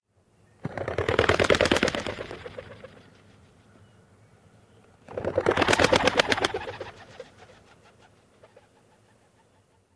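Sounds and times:
two rock pigeons taking flight: 0:00.6 - 0:03.0, 0:05.1 - 0:09.4.

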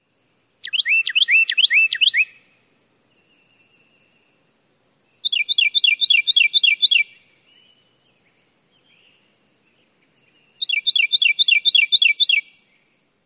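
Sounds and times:
Carolina Wren singing: 0:00.6 - 0:02.4, 0:05.1 - 0:12.7.

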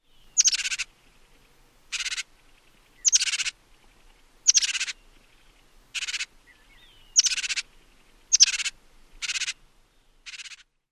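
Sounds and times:
Juniper Titmouse calls: 0:00.4 - 0:00.9, 0:01.9 - 0:02.3, 0:03.0 - 0:03.6, 0:04.4 - 0:05.0, 0:06.0 - 0:06.3, 0:07.1 - 0:07.7, 0:08.3 - 0:09.6, 0:10.3 - 0:10.6.

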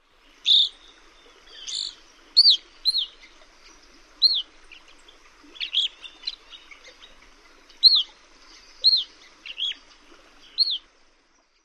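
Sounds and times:
evening grosbeak calling: 0:00.4 - 0:04.9, 0:05.6 - 0:07.1, 0:07.7 - 0:09.8, 0:10.4 - 0:10.8.

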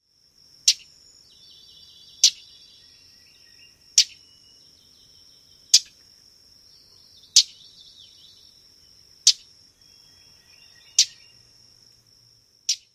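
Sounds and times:
Common Yellowthroat tschat calls: 0:00.6 - 0:06.0, 0:06.8 - 0:08.6, 0:09.2 - 0:11.5, 0:12.7 - 0:12.9.

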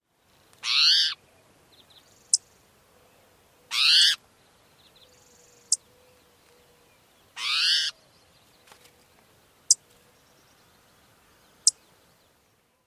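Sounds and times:
spotted towhee mew calls: 0:00.6 - 0:01.2, 0:03.6 - 0:04.2, 0:07.4 - 0:08.0.

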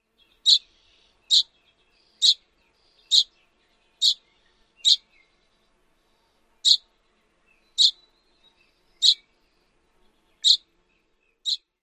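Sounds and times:
tjip calls: 0:00.5 - 0:00.7, 0:02.2 - 0:02.4, 0:03.1 - 0:03.3, 0:04.0 - 0:04.2, 0:04.8 - 0:05.0, 0:06.6 - 0:06.8, 0:07.8 - 0:08.0, 0:09.0 - 0:09.2, 0:10.4 - 0:10.6, 0:11.4 - 0:11.7.

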